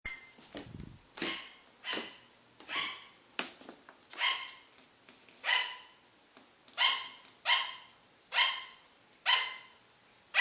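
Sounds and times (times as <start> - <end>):
sugar glider yapping: 1.2 - 3.2, 4.2 - 4.7, 5.4 - 6.0, 6.7 - 10.3.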